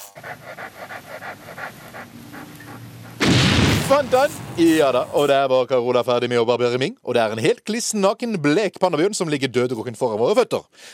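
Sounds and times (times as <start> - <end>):
golden retriever panting while sniffing for landmines: 0.0 - 3.2
speech: 0.2 - 10.9
loud blast of harsh noise: 3.2 - 4.9.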